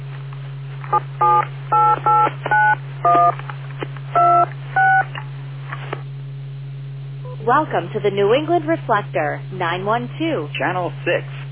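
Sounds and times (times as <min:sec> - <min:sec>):
constant low hum: 0:00.0 - 0:11.4
speech: 0:00.9 - 0:01.4, 0:07.6 - 0:11.4
telephone keypad dialing tones: 0:01.2 - 0:03.3, 0:04.2 - 0:05.1.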